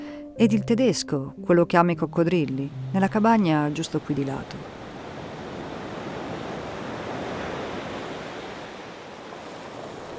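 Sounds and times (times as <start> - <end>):
speech: 0.4 - 4.7
sea waves washing up a beach: 2.7 - 10.1.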